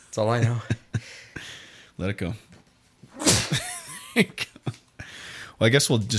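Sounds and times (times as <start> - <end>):
speech: 0.2 - 1.1, 2.0 - 2.5, 4.2 - 4.5, 5.6 - 6.1
loud sneeze: 3.1 - 3.8.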